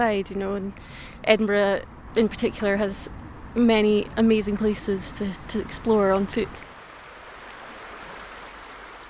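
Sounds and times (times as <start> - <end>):
speech: 0.0 - 6.7
flowing river water of the Water of Leith in Edinburgh: 1.9 - 9.0.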